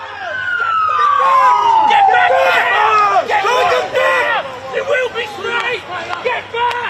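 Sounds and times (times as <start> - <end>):
siren wailing: 0.0 - 4.4
rioting crowd shouting outside a hospital: 0.0 - 6.8.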